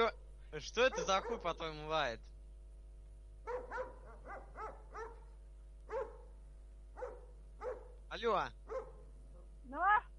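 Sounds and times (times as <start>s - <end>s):
speech: 0.0s - 2.3s, 3.4s - 4.5s, 8.1s - 8.7s, 9.7s - 10.1s
steady low hum: 0.0s - 10.1s
dog barking over a phone call: 0.8s - 1.6s, 3.4s - 6.3s, 7.0s - 8.0s, 8.6s - 9.1s.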